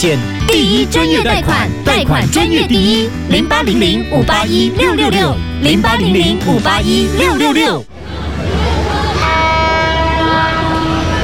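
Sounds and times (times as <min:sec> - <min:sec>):
speech: 0:00.0 - 0:08.2
train rail rumble: 0:07.9 - 0:11.2
train horn blast: 0:09.1 - 0:11.2.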